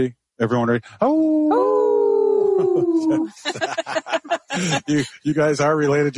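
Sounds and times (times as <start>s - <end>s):
speech: 0.0s - 1.8s, 2.6s - 6.1s
people chattering: 1.0s - 6.1s
group of people howling like dogs: 1.1s - 3.4s
laughter: 2.6s - 5.2s.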